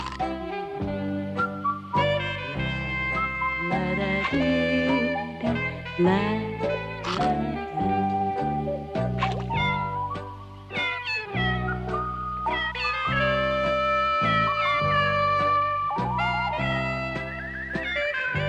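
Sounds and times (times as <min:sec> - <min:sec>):
steady low bass: 0:00.0 - 0:18.4
cat meows sung over a backing track: 0:03.6 - 0:08.6.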